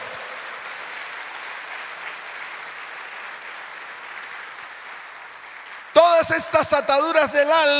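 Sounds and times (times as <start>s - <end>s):
congregation applauding: 0.0s - 7.7s
speech: 6.2s - 7.7s.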